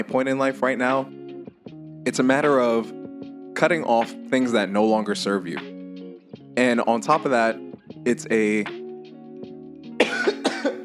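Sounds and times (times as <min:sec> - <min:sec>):
speech: 0:00.0 - 0:01.2, 0:02.0 - 0:03.0, 0:03.6 - 0:05.7, 0:06.6 - 0:08.8
loud harsh coughs: 0:10.0 - 0:10.8.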